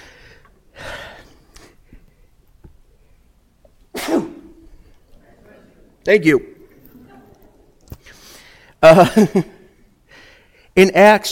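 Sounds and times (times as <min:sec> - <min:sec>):
person sneezing: 0:03.9 - 0:04.8
speech: 0:06.1 - 0:06.5, 0:08.8 - 0:09.6, 0:10.8 - 0:11.3.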